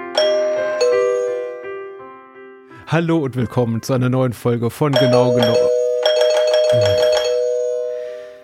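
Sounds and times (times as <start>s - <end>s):
electronic doorbell ringing with a buzzing tone: 0.2s - 1.8s, 4.9s - 8.4s
speech: 2.9s - 5.7s, 6.7s - 7.1s.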